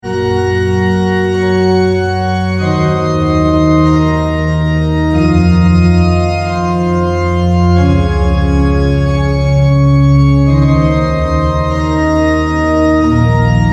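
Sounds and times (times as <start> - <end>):
organ: 0.0 - 13.7.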